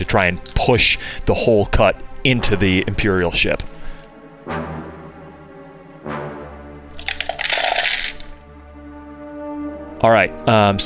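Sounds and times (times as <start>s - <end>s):
speech: 0.0s - 3.7s, 4.5s - 4.7s, 10.0s - 10.8s
tabletop role-playing game dice rolling and clattering: 3.4s - 4.1s, 6.9s - 8.4s.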